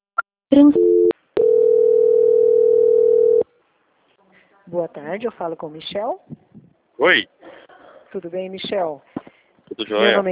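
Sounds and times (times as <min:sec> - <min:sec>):
speech: 0:00.5 - 0:01.0, 0:04.7 - 0:06.4, 0:07.0 - 0:07.4, 0:08.1 - 0:09.1, 0:09.8 - 0:10.3
telephone tones while a call is transferred: 0:00.6 - 0:03.4.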